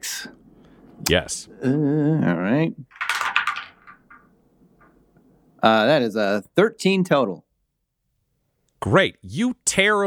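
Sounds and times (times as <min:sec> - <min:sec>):
speech: 0:01.1 - 0:03.0, 0:05.6 - 0:07.5, 0:08.8 - 0:10.0
dice rolling on a table during a tabletop role-playing game: 0:02.9 - 0:05.0.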